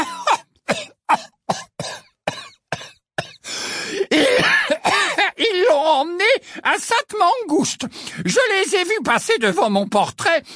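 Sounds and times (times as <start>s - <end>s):
woman in a fit of coughing: 0.0s - 3.4s, 4.1s - 5.2s
rasping wheezy coughs: 0.0s - 5.3s
speech: 6.0s - 10.5s.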